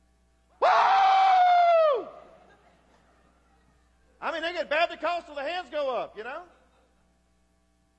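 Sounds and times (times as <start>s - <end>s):
person yelling a cheer imitating a football crowd: 0.6s - 2.2s
laughter: 2.2s - 4.2s, 6.3s - 7.2s
speech: 4.6s - 6.6s.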